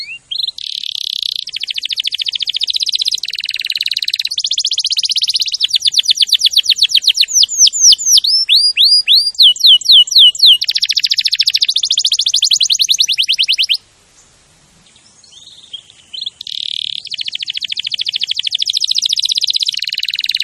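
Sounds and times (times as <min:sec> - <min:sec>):
champion canary song: 0:00.0 - 0:20.4.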